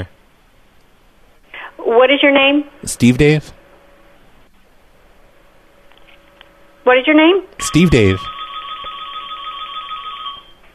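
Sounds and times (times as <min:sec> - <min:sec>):
speech: 0:01.9 - 0:03.6, 0:06.9 - 0:08.4
shrill electronic phone ringtone: 0:07.6 - 0:10.6.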